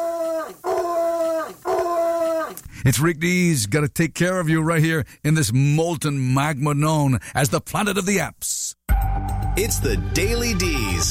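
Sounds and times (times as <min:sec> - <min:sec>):
guard dog howling: 0:00.0 - 0:02.6
speech: 0:02.8 - 0:11.0.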